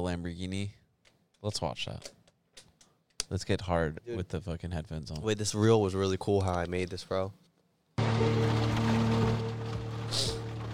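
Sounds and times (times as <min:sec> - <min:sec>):
speech: 0:00.0 - 0:00.8, 0:01.4 - 0:02.2, 0:03.3 - 0:07.4, 0:08.2 - 0:09.0
low droning hum: 0:08.0 - 0:10.7
steady dense rain: 0:08.0 - 0:10.7.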